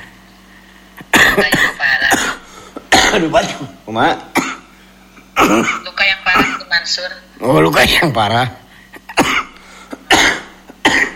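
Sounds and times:
harsh coughs: 1.0 - 3.7, 4.3 - 4.7, 5.3 - 6.6, 8.9 - 11.1
speech: 1.4 - 1.7, 3.1 - 4.4, 5.4 - 8.6.

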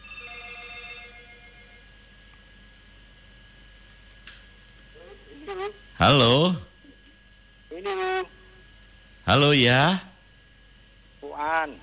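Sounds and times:
telephone ringing with an incoming call: 0.0 - 1.9
speech: 6.0 - 6.7, 9.3 - 10.1.

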